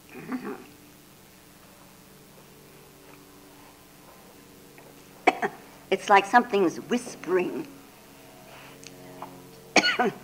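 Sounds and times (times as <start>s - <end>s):
quiet hum: 0.0s - 10.2s
person coughing with a rasping hack: 5.3s - 5.6s, 9.8s - 10.2s
speech: 5.9s - 7.8s, 10.0s - 10.2s.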